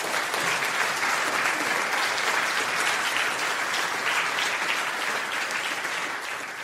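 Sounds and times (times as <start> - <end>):
audience applause for a speaker after an evening talk: 0.0 - 6.6.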